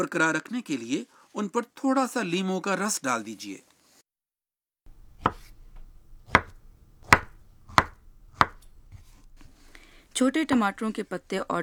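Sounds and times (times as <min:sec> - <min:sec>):
speech: 0:00.0 - 0:03.7, 0:10.2 - 0:11.6
knife chopping peeled vegetable pieces into small cubes: 0:04.9 - 0:11.6.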